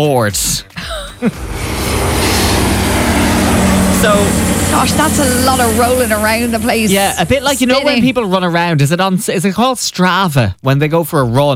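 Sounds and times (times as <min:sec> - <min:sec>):
speech: 0:00.0 - 0:01.9, 0:04.0 - 0:11.5
propeller plane engine droning overhead: 0:01.1 - 0:08.7.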